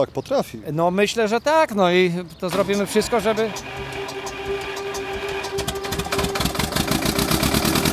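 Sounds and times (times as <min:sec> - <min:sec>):
speech: 0:00.0 - 0:04.2
old tractor engine running with chugging pulse: 0:02.4 - 0:07.9.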